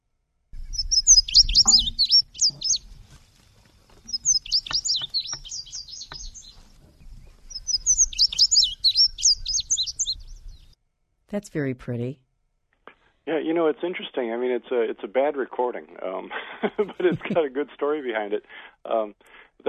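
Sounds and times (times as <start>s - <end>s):
indigo bunting singing: 0.6s - 10.8s
speech: 11.4s - 12.2s, 13.3s - 19.6s
laughter: 13.4s - 19.0s.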